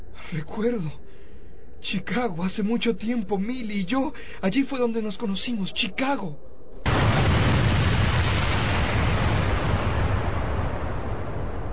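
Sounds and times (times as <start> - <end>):
speech: 0.3 - 1.1, 1.8 - 6.5
massive explosion over a river: 6.8 - 11.7.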